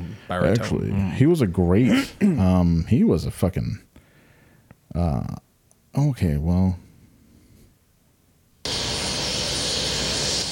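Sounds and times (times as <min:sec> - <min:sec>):
speech: 0:00.3 - 0:03.9, 0:04.9 - 0:05.4, 0:06.0 - 0:06.8
helicopter engine roar during a late-night flight: 0:08.7 - 0:10.5.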